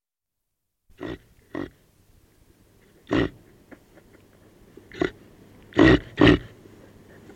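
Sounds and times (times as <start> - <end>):
reindeer grunting: 0.9 - 1.8, 3.0 - 3.5, 4.9 - 7.3
speech: 1.0 - 1.3.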